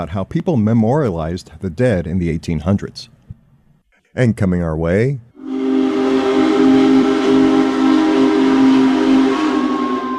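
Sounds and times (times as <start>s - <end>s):
speech: 0.0s - 3.2s, 4.2s - 5.3s
multi-tone steam whistle of a Big Boy steam locomotive: 5.4s - 10.1s.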